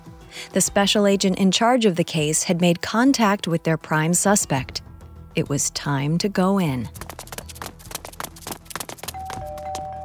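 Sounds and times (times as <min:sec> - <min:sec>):
speech: 0:00.4 - 0:07.2
electric doorbell ringing: 0:09.2 - 0:10.0.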